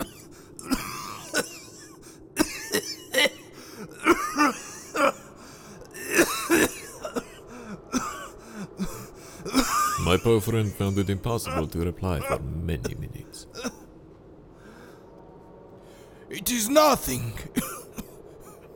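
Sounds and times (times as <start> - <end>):
person in a harsh coughing fit: 0.0 - 5.3, 6.0 - 13.9, 17.5 - 18.2
speech: 10.2 - 13.5, 16.8 - 17.5.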